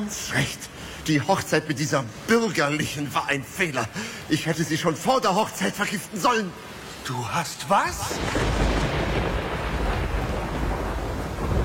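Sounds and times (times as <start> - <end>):
speech: 0.0 - 8.6
roaring wind of a raging thunderstorm: 7.8 - 11.6
deep continuous rumbling thunder of a raging thunderstorm: 8.0 - 11.6.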